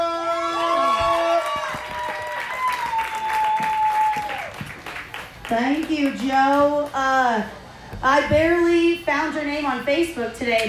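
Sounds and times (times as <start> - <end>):
audience applause at a stand-up comedy show: 0.7 - 6.3
speech: 5.5 - 10.6.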